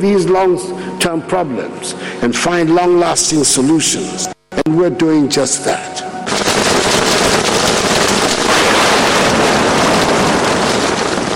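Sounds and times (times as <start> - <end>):
speech: 0.0 - 6.0
gusting breeze: 6.3 - 11.3
heavy rain: 6.3 - 11.3.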